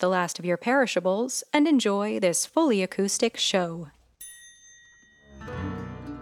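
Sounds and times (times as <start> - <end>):
speech: 0.0 - 4.0
bright electronic announcement chime tone: 4.2 - 6.1.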